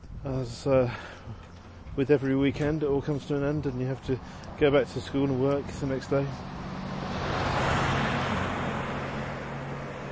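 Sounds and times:
speech: 0:00.3 - 0:01.4, 0:02.0 - 0:06.6
large Chevy pickup truck with double rear wheels driving past: 0:06.3 - 0:10.0.

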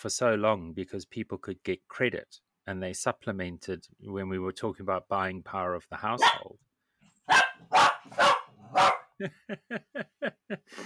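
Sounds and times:
speech: 0:00.0 - 0:06.7, 0:07.3 - 0:10.8
dogs barking: 0:06.2 - 0:06.5, 0:07.3 - 0:09.2
shorter high-pitched dog yaps: 0:07.3 - 0:09.0
laughter: 0:09.2 - 0:10.8.

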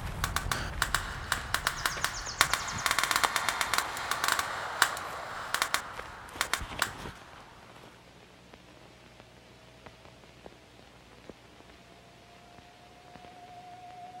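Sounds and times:
birds chirping: 0:00.0 - 0:07.9
rifles firing during a shooting session in a forest: 0:00.0 - 0:08.0.

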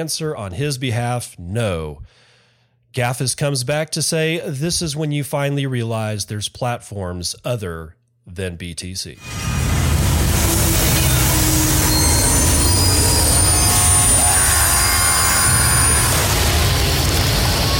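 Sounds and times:
speech: 0:00.0 - 0:02.2, 0:02.9 - 0:09.8
heavy rolling rumble of a train: 0:09.3 - 0:17.7
train wheels squealing in a train wreck sound effect: 0:11.2 - 0:16.1.

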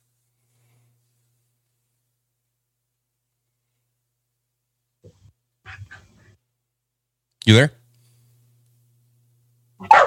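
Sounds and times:
faint low hum: 0:00.0 - 0:10.0
speech: 0:07.5 - 0:07.8
dogs wrestling and barking: 0:09.8 - 0:10.0.

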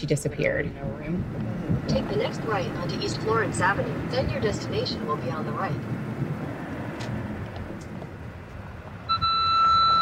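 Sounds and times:
speech: 0:00.0 - 0:06.2
low road and engine rumble inside a car: 0:00.0 - 0:09.9
car electronic warning beep: 0:09.1 - 0:09.9.

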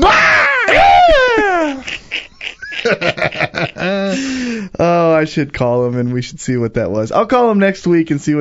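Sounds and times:
man screaming imitating a wrestler's roar: 0:00.0 - 0:01.8
laughter-like yelps: 0:00.0 - 0:04.1
speech: 0:02.9 - 0:08.3.

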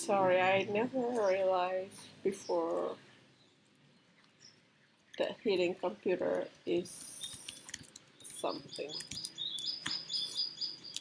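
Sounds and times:
speech: 0:00.0 - 0:03.1, 0:05.2 - 0:07.1, 0:08.4 - 0:09.2
faint hiss: 0:00.0 - 0:10.9
bird chirping: 0:00.2 - 0:05.7, 0:06.6 - 0:10.9
soft clicks: 0:07.0 - 0:10.9.

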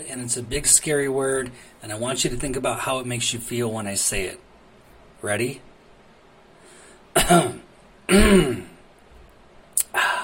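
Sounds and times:
speech: 0:00.0 - 0:04.5, 0:05.2 - 0:05.7, 0:07.2 - 0:08.7
person clearing throat: 0:07.2 - 0:08.8.

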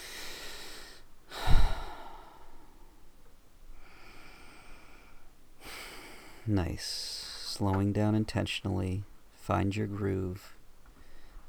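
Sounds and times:
deep intentional breathing during a guided relaxation exercise: 0:00.0 - 0:07.6, 0:11.0 - 0:11.4
speech: 0:06.5 - 0:10.6.

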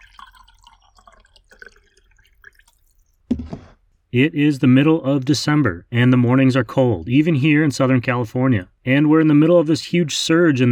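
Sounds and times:
faint dripping: 0:00.0 - 0:03.3
coffee trickling and splashing into a cup: 0:00.0 - 0:03.7
sharp thump of something being set down: 0:03.3 - 0:03.8
speech: 0:04.1 - 0:10.7.

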